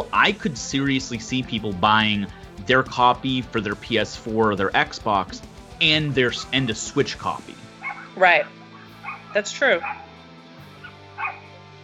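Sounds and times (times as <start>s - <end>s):
speech: 0.2s - 7.6s, 8.2s - 8.6s, 9.3s - 10.0s
neighbors' small dog yipping across the street: 7.8s - 10.1s, 10.8s - 11.5s.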